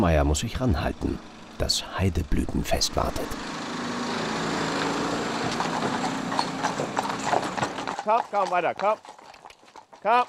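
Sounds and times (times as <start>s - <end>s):
speech: 0.0s - 3.6s, 8.1s - 9.1s, 10.0s - 10.2s
steady engine-like drone: 0.0s - 8.0s
hooves of horses resting in a truck clip-clopping: 4.0s - 10.2s.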